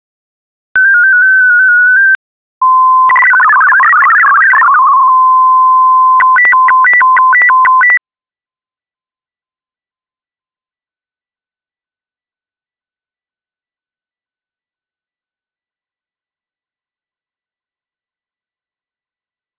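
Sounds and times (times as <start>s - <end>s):
MFSK64 data signal sending an RGB test pattern: 0.8s - 8.0s.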